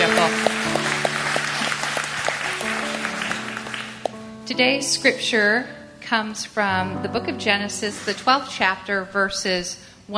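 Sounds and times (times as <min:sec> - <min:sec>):
audience applauding: 0:00.0 - 0:04.2
speech: 0:04.5 - 0:10.1.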